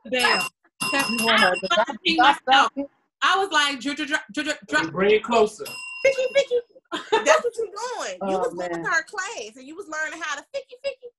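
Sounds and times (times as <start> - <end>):
people talking and laughing: 0.0 - 2.9, 4.7 - 11.1
speech: 0.0 - 11.1
small bell ringing: 0.2 - 2.4, 5.6 - 6.6.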